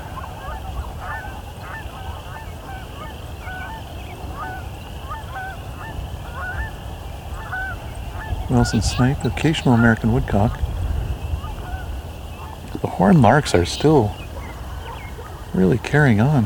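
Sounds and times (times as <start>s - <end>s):
large flock of Canada geese honking: 0.0s - 16.4s
steady low rumble of wind: 0.0s - 16.4s
speech: 8.5s - 10.6s, 13.0s - 14.2s, 15.6s - 16.4s.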